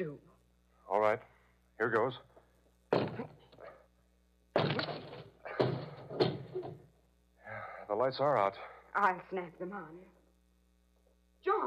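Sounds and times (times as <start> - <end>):
speech: 0.0 - 0.3, 0.9 - 2.3, 7.9 - 10.2, 11.4 - 11.6
low steady hum: 0.0 - 11.6
heavy thuds of a door being forced open: 4.6 - 6.9.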